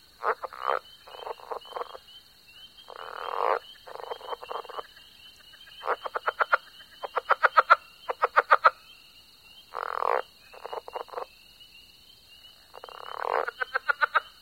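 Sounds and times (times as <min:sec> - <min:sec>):
southern leopard frog harsh grating croak: 0:00.0 - 0:14.4
southern leopard frog giving rapid clucking pulses: 0:00.2 - 0:02.0, 0:02.9 - 0:08.8, 0:09.7 - 0:11.3, 0:12.7 - 0:14.4.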